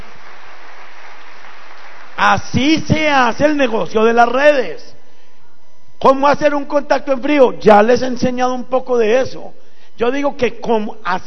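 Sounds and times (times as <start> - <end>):
audience at a talk applauding: 0.0 - 2.5
speech: 2.2 - 4.9, 6.0 - 11.2.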